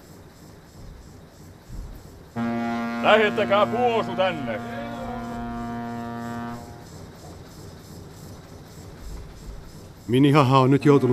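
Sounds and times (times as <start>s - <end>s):
steady rumbling noise: 0.0s - 11.1s
speech: 2.4s - 4.8s, 10.1s - 11.1s
ship whistle toot in fog near fishing boats: 2.4s - 6.9s.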